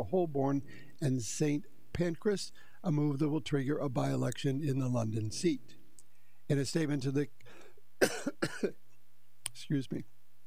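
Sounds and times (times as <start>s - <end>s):
speech: 0.0s - 5.8s, 6.5s - 8.8s, 9.6s - 10.1s
low steady hum: 0.0s - 10.4s
harsh cough: 8.0s - 8.8s.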